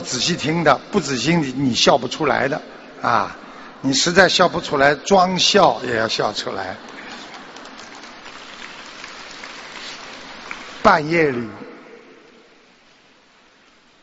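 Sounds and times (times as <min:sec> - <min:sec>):
speech: 0:00.1 - 0:07.0, 0:10.8 - 0:11.7
crackling applause from an audience at a talk: 0:06.8 - 0:11.1.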